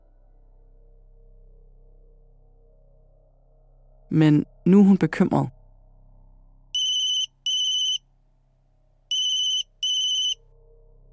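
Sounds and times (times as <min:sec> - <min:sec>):
low steady hum: 0:03.9 - 0:08.0, 0:09.1 - 0:11.1
speech: 0:04.1 - 0:05.6
mobile phone ringtone of bright buzzing electronic tones: 0:06.8 - 0:08.0, 0:09.1 - 0:10.4.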